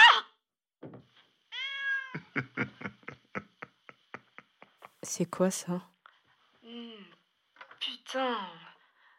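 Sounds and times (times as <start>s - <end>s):
cat meowing: 1.5s - 2.2s
laughter: 2.1s - 4.9s
speech: 5.1s - 5.9s, 8.1s - 8.6s.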